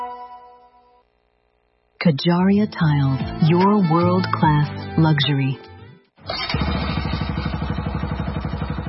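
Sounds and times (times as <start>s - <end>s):
speech: 2.1s - 5.7s
old Bajaj Pulsar motorcycle engine running: 6.2s - 8.8s.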